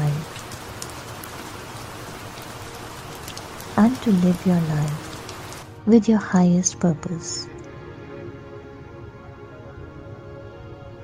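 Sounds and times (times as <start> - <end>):
falling rain: 0.0 - 6.8
speech: 3.8 - 5.0, 5.8 - 7.5.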